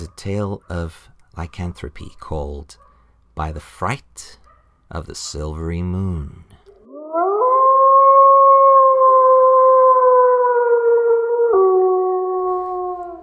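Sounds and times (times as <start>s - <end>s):
speech: 0.1s - 6.5s
pet dog howling: 6.8s - 13.2s.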